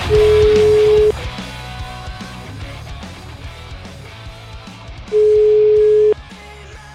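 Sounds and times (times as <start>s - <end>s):
telephone line tone beeps while placing a call: 0.1s - 1.1s, 5.1s - 6.1s.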